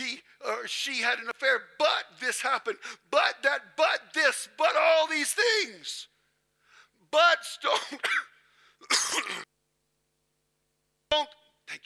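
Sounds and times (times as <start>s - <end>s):
speech: 0.6s - 6.1s, 7.1s - 9.5s, 11.1s - 11.8s
person coughing: 7.7s - 9.5s.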